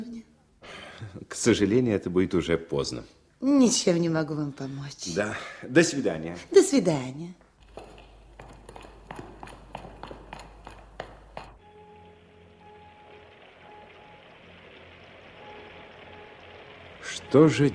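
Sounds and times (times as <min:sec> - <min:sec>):
speech: 0:01.0 - 0:07.4, 0:17.3 - 0:17.7
regular knocking steps: 0:07.4 - 0:11.6
rain falling: 0:07.6 - 0:17.7.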